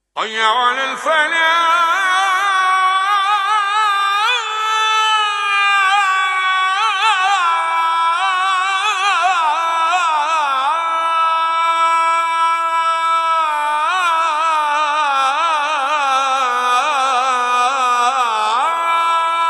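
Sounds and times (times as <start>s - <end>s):
ezan call to prayer alarm: 0.2s - 19.4s.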